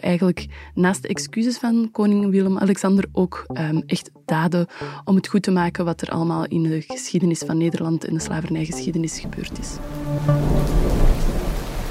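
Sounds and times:
speech: 0:00.0 - 0:11.0
steady rain pouring down: 0:09.2 - 0:11.8.

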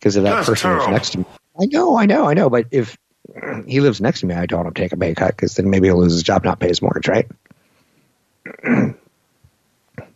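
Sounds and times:
speech: 0:00.0 - 0:07.5, 0:08.4 - 0:09.0
person clearing phlegm from the throat: 0:00.3 - 0:01.3, 0:08.4 - 0:09.0
faint short grunt: 0:00.3 - 0:01.4, 0:03.3 - 0:03.7, 0:08.5 - 0:09.0.

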